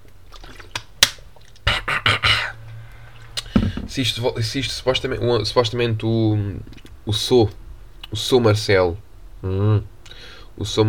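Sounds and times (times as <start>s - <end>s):
wet gulping swallows: 0.1s - 3.9s
sip of water: 1.4s - 3.6s
speech: 4.0s - 10.0s, 10.6s - 10.8s.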